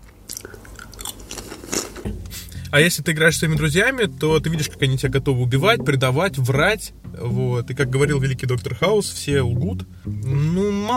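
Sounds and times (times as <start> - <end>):
person crunching and chewing crisps into an open microphone: 0.0 - 2.1
speech: 2.7 - 10.9.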